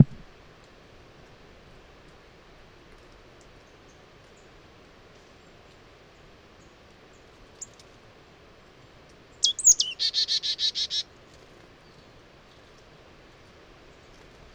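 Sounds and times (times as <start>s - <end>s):
marsh tit call: 0.0s - 0.2s, 9.4s - 11.0s.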